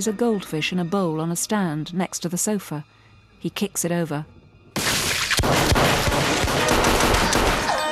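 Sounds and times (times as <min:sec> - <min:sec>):
speech: 0:00.0 - 0:04.4
gunfire cracks in an indoor shootout in a room with a wooden floor: 0:04.8 - 0:07.7.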